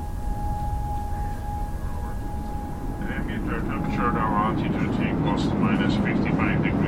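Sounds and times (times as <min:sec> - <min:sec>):
faint high tone: 0:00.0 - 0:05.4
indistinct voices talking: 0:00.0 - 0:06.8
roar of an airplane flying: 0:00.0 - 0:06.8.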